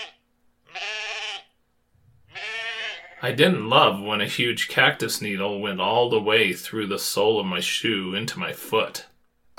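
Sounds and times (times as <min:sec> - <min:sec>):
bighorn sheep bleating: 0:00.0 - 0:01.5, 0:02.3 - 0:03.2
speech: 0:03.2 - 0:09.5.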